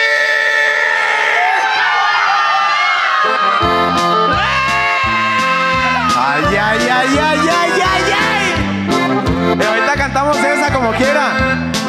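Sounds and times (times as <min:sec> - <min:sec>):
crowd whooping and shouting together: 0:00.0 - 0:08.9
band music: 0:03.1 - 0:11.8.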